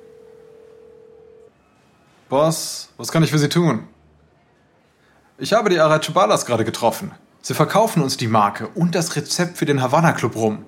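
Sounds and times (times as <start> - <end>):
single-pitched telephone tone: 0.0 - 1.7
faint hiss: 0.0 - 10.6
speech: 2.3 - 4.0, 5.4 - 10.6.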